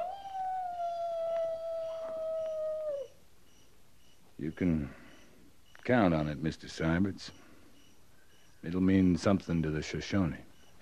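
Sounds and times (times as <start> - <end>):
coyote howling: 0.0 - 3.2
speech: 4.4 - 5.0, 5.8 - 7.4, 8.6 - 10.5.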